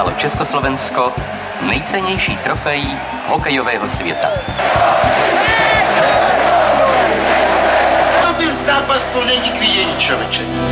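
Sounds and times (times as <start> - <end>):
speech: 0.0 - 6.1, 8.6 - 10.7
packed sports-hall crowd cheering at an ice hockey match: 0.0 - 10.3.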